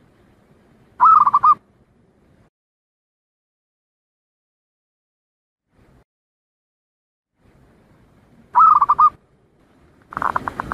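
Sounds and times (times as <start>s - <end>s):
zebra dove cooing: 1.0s - 1.6s, 8.6s - 9.2s, 10.1s - 10.7s.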